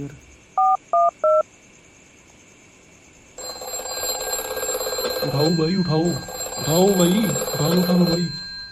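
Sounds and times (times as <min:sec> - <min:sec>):
speech: 0:00.0 - 0:00.3, 0:05.2 - 0:08.4
telephone keypad dialing beeps: 0:03.4 - 0:08.4.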